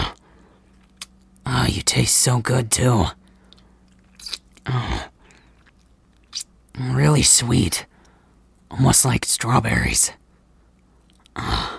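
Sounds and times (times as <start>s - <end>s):
speech: 1.7s - 3.2s, 4.7s - 5.1s, 6.8s - 7.9s, 8.7s - 10.2s, 11.4s - 11.7s
wet licking and mouth sounds: 3.5s - 4.6s, 5.3s - 6.5s.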